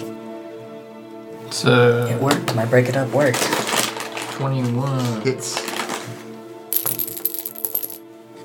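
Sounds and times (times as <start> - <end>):
speech: 1.5 - 3.6, 4.4 - 5.7
dice clattering across a hard tabletop: 6.7 - 8.0.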